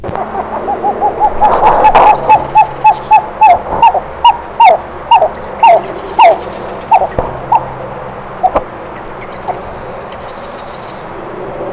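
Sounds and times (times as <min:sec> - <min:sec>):
Pied-billed Grebe owhoop call: 0:00.0 - 0:07.7.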